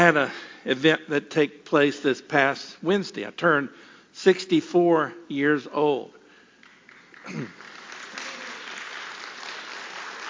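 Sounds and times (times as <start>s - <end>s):
speech: 0.1s - 6.2s, 7.2s - 7.7s
audience applause: 6.6s - 10.2s.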